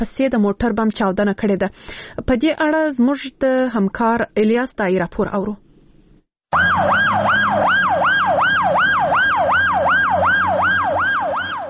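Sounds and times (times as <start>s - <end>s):
speech: 0.0s - 5.6s, 6.5s - 7.8s
ambulance siren outside an emergency hospital in Lashkar Gah: 6.5s - 11.6s.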